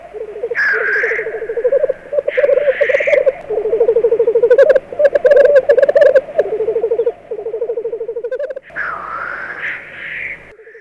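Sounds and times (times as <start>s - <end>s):
black grouse display bubbling low roll: 0.0s - 8.7s.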